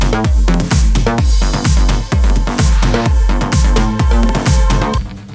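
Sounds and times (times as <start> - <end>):
battle alarm: 0.1 - 5.0.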